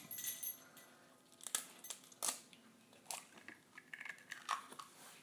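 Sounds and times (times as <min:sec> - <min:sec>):
raw egg cracking open: 0:01.3 - 0:05.0.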